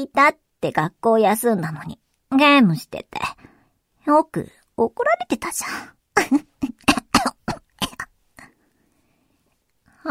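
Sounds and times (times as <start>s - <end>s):
speech: 0.0s - 6.5s
raspy coughing fit: 6.2s - 8.1s.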